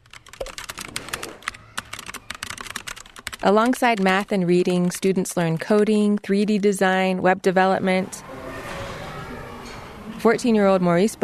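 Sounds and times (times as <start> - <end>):
fast typing on a computer keyboard: 0.0 - 6.9
speech: 3.4 - 8.2, 10.2 - 11.2.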